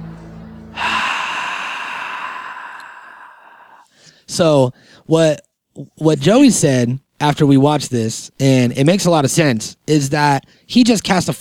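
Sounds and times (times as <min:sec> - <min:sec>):
man exhaling forcefully: 0:00.7 - 0:04.2
speech: 0:04.3 - 0:11.3.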